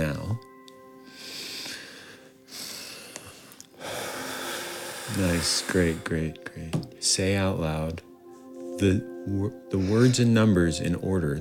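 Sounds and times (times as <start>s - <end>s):
people breathing in and out together: 1.0s - 5.7s
speech: 5.1s - 8.1s, 8.8s - 11.3s.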